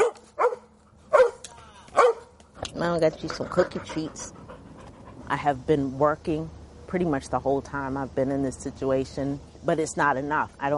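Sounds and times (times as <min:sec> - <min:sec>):
dogs barking in the woods: 0:00.0 - 0:02.4
speech: 0:02.8 - 0:04.4, 0:05.3 - 0:10.7.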